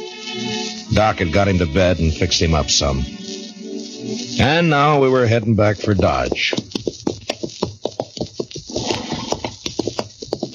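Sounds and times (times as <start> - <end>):
speech: 1.0 - 3.4, 4.1 - 6.8
horse hooves stomping on a trail of dust and cinders: 5.2 - 10.5.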